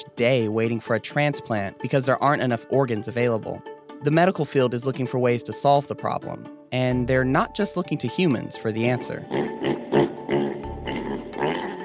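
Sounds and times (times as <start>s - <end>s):
speech: 0.2s - 9.7s
pig oinking and grunting: 9.2s - 11.8s.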